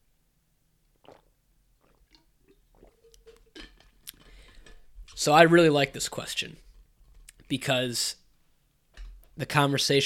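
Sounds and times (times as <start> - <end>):
person sipping water with slurps and swallow: 0.9 - 4.8
speech: 5.2 - 6.7, 7.5 - 8.2, 9.4 - 10.0.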